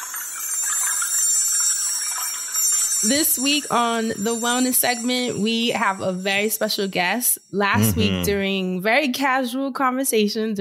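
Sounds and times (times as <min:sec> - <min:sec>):
wind chimes ringing: 0:00.0 - 0:06.7
speech: 0:03.0 - 0:10.5
laughter: 0:07.8 - 0:08.4.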